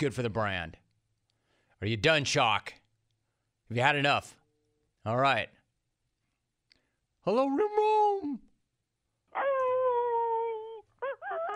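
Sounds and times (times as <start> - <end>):
speech: 0.0 - 0.8, 1.8 - 2.8, 3.7 - 4.4, 5.0 - 5.6, 7.2 - 8.5
dog whining: 9.3 - 11.5.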